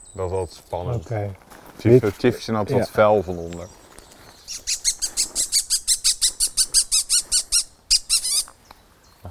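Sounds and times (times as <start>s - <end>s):
speech: 0.2s - 3.8s, 4.5s - 4.8s
Eurasian bullfinch calling: 4.3s - 8.6s.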